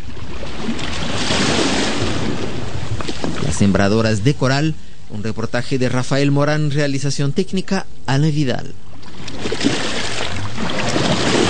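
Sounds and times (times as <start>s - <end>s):
sea waves washing: 0.0s - 5.8s, 8.8s - 11.4s
speech: 3.6s - 9.8s.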